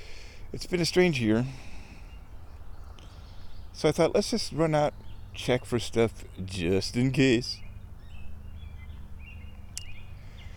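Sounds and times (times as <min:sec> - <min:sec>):
faint birdsong outdoors: 0:00.0 - 0:10.5
speech: 0:00.5 - 0:01.7, 0:03.8 - 0:07.6.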